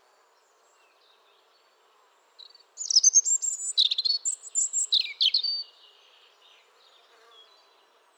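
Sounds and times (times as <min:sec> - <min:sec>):
European robin singing high liquid warbling phrase: 0:02.8 - 0:05.7.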